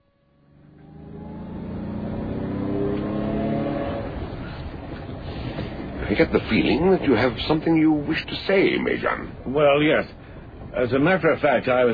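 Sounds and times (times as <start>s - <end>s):
car engine revving and accelerating away: 0.2s - 7.6s
speech: 6.1s - 10.2s, 10.8s - 11.9s.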